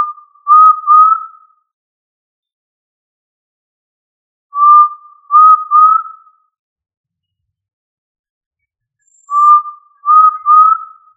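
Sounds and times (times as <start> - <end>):
tinamou giving soft whistled upslurred triplets: 4.6 - 6.3, 9.1 - 11.1.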